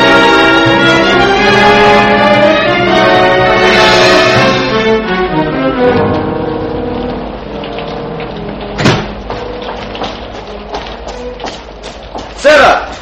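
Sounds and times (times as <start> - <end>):
steady rain hissing outside: 0.0 - 13.0
low tonal hum: 1.2 - 11.4.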